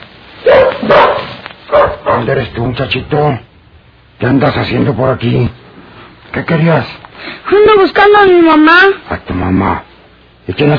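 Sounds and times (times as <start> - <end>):
dog barking: 0.4 - 2.4
speech: 2.2 - 3.5, 4.2 - 5.6, 6.3 - 10.7.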